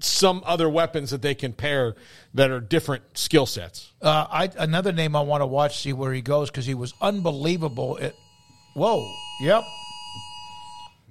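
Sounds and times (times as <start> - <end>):
speech: 0.0 - 8.2, 8.8 - 9.8
phone emergency tornado warning alert tone: 6.6 - 11.1.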